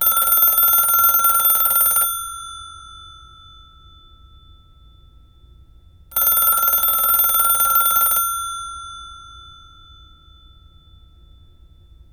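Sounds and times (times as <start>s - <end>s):
phone ringing: 0.0s - 3.4s, 6.1s - 9.9s.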